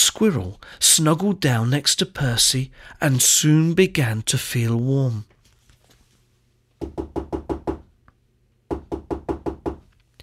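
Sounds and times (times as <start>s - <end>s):
speech: 0.0s - 5.4s
knocking on a wooden door: 6.8s - 7.9s, 8.7s - 9.9s.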